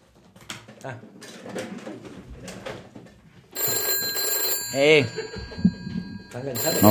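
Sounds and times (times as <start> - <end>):
telephone ringing: 3.6 - 6.8
voices talking: 6.3 - 6.8.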